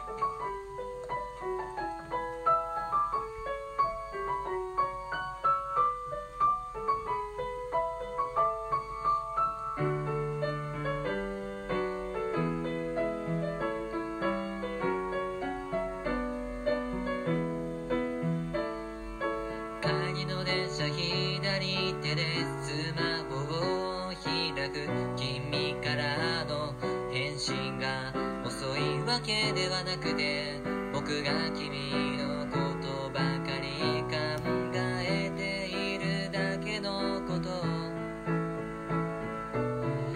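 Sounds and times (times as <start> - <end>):
instrumental intro of a new self-written song: 0.0 - 40.1.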